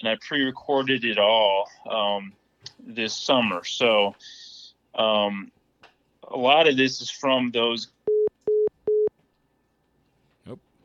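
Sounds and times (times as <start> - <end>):
speech: 0.0 - 4.4, 5.0 - 5.6, 6.3 - 8.0
phone busy signal after call disconnection: 8.1 - 9.1.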